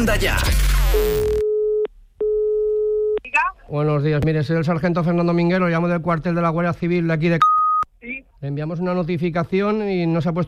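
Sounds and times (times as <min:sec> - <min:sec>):
speech: 0:00.0 - 0:01.4, 0:03.7 - 0:07.5, 0:08.4 - 0:10.4
ringing tone of an outgoing telephone call: 0:01.2 - 0:03.2.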